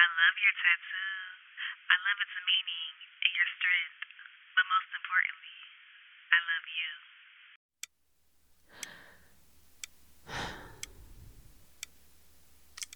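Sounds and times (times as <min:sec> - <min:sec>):
speech: 0:00.0 - 0:04.0, 0:04.6 - 0:05.7, 0:06.3 - 0:07.2
clock ticking in a rented room: 0:07.8 - 0:12.9
person sitting on the edge of a bed breathing softly: 0:08.6 - 0:11.9.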